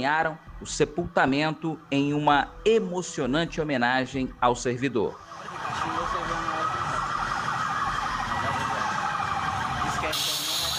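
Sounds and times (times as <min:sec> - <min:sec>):
speech: 0:00.0 - 0:05.9
emergency vehicle sirens wailing in a funeral convoy of public security vehicles: 0:05.0 - 0:10.7
traffic rumble: 0:05.3 - 0:10.7.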